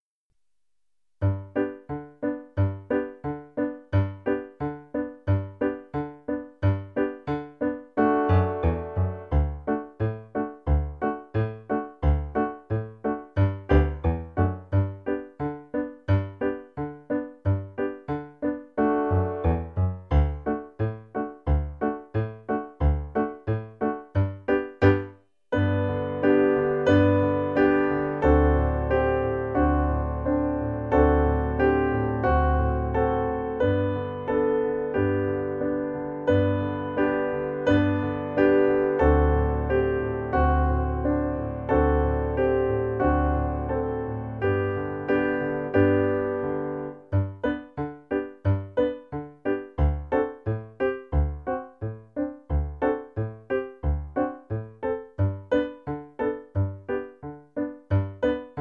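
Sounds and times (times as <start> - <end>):
polka played on piano: 1.2 - 58.6.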